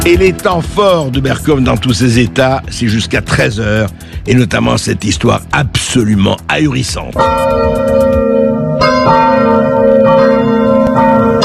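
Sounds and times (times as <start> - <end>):
speech: 0.0 - 9.2
church carillon bells ringing: 7.2 - 11.4.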